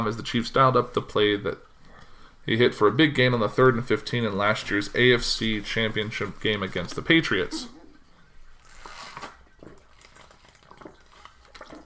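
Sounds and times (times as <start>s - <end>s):
speech: 0.0s - 1.7s, 2.4s - 7.8s
faint breathing: 1.8s - 2.5s
swallow: 7.5s - 11.8s
soft liquid slurps from sipping water: 8.5s - 11.8s.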